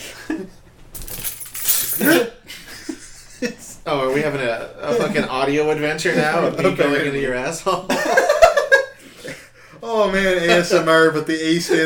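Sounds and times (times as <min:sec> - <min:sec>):
bunch of keys jangling: 0:01.0 - 0:02.2
speech: 0:04.2 - 0:08.2, 0:09.9 - 0:11.8
laughter: 0:07.7 - 0:09.5.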